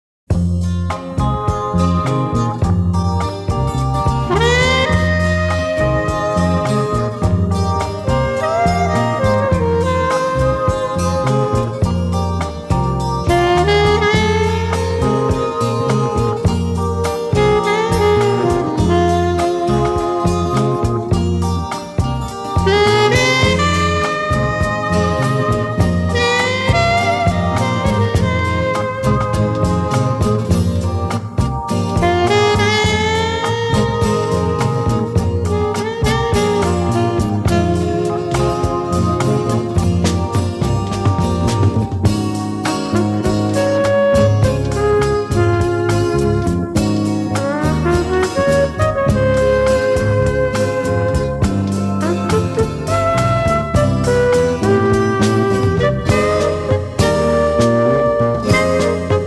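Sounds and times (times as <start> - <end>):
saxophone: 0.3 - 59.2.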